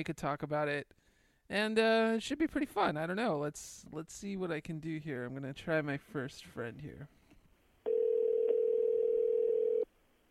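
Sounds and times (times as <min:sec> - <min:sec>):
speech: 0:00.0 - 0:07.2
electronic telephone ringing tone while placing a call: 0:07.9 - 0:09.9.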